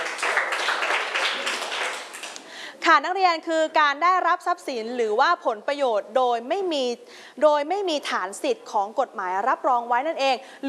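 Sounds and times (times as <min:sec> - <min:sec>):
students clapping for a classmate in class: 0:00.0 - 0:02.5
speech: 0:02.9 - 0:10.6.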